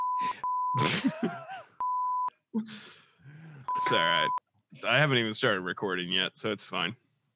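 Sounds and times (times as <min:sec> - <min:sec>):
voice imitating a censor bleep: 0:00.0 - 0:00.8, 0:03.7 - 0:04.4
speech: 0:00.2 - 0:01.6, 0:02.6 - 0:03.0, 0:03.8 - 0:07.0.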